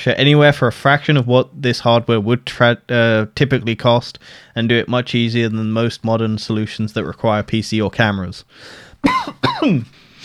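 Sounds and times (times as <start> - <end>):
speech: 0.0 - 10.2
person coughing: 9.0 - 10.2.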